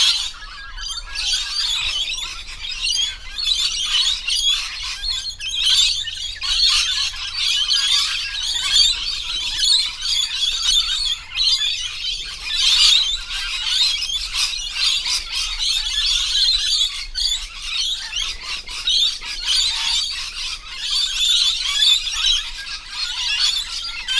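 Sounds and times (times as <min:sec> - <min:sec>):
lorikeets screeching in chorus: 0:00.0 - 0:24.1.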